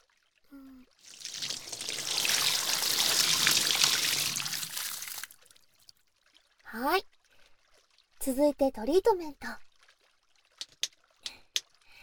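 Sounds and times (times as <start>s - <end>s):
running water rinsing hair: 1.0s - 5.6s
speech: 6.8s - 7.1s, 8.2s - 9.7s.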